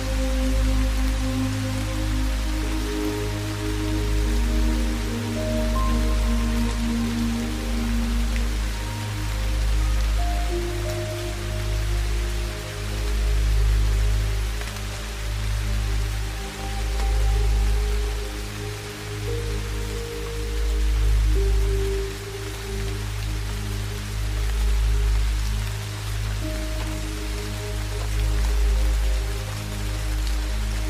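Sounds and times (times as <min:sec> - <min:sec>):
soft ambient music with long held low tones: 0:00.0 - 0:30.8
steady rain: 0:00.0 - 0:30.8.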